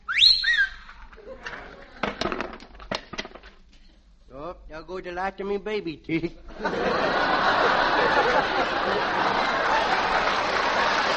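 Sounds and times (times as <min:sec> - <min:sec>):
child's loud shrill whistle sweeping upward in pitch: 0:00.0 - 0:01.0
laughter: 0:01.2 - 0:02.3, 0:06.2 - 0:11.1
sharp clattering and rustling bursts: 0:01.2 - 0:04.0
speech: 0:04.8 - 0:09.6.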